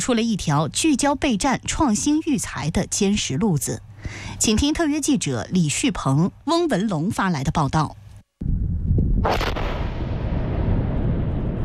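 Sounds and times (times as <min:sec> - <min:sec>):
speech: 0:00.0 - 0:08.5, 0:09.2 - 0:09.8
heavy sustained low rumble: 0:08.4 - 0:11.6
missile striking its target and exploding: 0:09.1 - 0:11.6.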